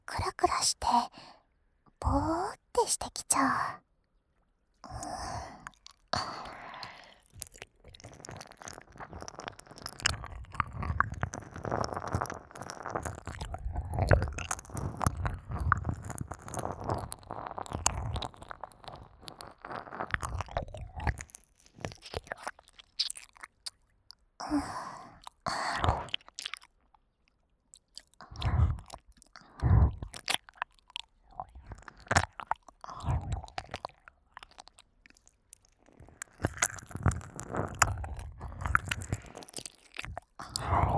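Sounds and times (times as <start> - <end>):
speech: 0.2 - 1.2, 2.1 - 3.8
breathy sighs: 4.9 - 7.3, 24.4 - 25.9, 40.4 - 40.9
wet tongue licking an ear in ASMR style: 4.9 - 23.8, 27.8 - 40.9.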